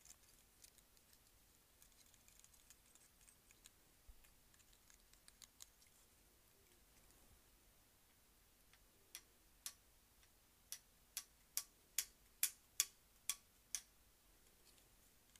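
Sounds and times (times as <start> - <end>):
low steady hum: 0.0 - 15.3
sharp bright clicks: 8.7 - 13.9.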